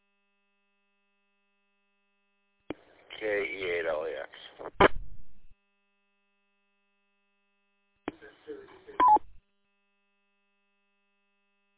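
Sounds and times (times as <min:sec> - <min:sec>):
speech: 0:03.2 - 0:04.9
rough noisy amateur radio signal static burst: 0:03.2 - 0:05.5
amateur radio mobile roger beep stepped tone: 0:09.0 - 0:09.4.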